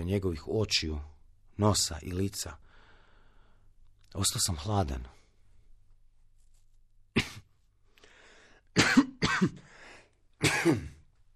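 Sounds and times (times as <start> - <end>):
speech: 0.1 - 2.6, 4.1 - 5.2, 10.4 - 10.9
person coughing: 7.2 - 7.5, 8.8 - 9.7, 10.4 - 11.1
throat clearing: 7.2 - 7.5, 10.4 - 11.1.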